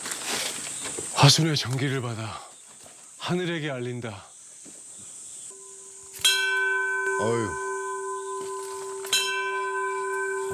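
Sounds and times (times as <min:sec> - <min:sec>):
speech: 0:01.2 - 0:02.5, 0:03.2 - 0:04.3, 0:07.2 - 0:07.6
large bell on a mountain struck by visitors: 0:05.5 - 0:10.5.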